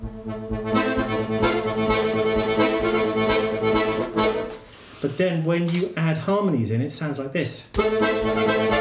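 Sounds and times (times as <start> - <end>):
bellows instrument playing a tango melody with the bellows working: 0.0 - 4.6, 7.8 - 8.7
speech: 5.2 - 8.7.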